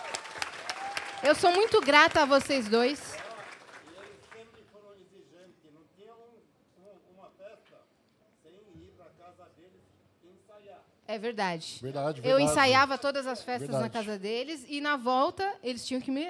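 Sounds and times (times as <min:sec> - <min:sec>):
audience applause: 0:00.0 - 0:04.6
speech: 0:01.2 - 0:03.1, 0:11.1 - 0:16.2.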